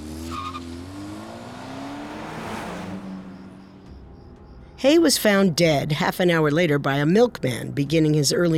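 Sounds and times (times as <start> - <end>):
car tires squealing: 0.0 - 4.6
car engine revving and driving off: 0.0 - 5.8
speech: 4.8 - 8.5.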